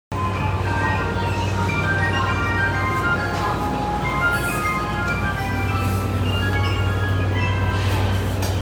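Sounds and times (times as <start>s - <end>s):
JR Yamanote Line train at Hamamatsucho: 0.1s - 8.6s.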